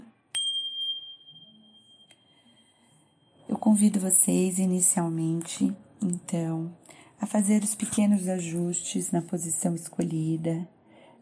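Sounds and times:
meditation bell struck to begin a meditation practice: 0:00.3 - 0:03.5
speech: 0:03.5 - 0:10.8.

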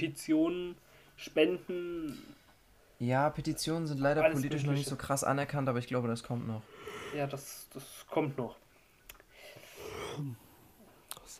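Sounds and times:
speech: 0:00.0 - 0:02.4, 0:03.0 - 0:08.6, 0:10.2 - 0:10.4
person yawning with low vocal groan: 0:09.8 - 0:10.4.

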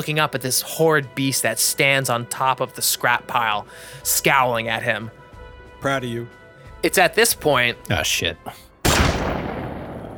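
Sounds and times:
speech: 0:00.0 - 0:05.2, 0:05.8 - 0:08.7
loud explosive bang with broadband roar: 0:08.8 - 0:10.1.

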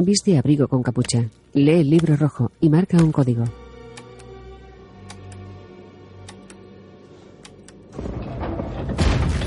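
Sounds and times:
speech: 0:00.0 - 0:03.6
heavy metal door grinding open with a low rumbling scrape: 0:07.9 - 0:09.4.

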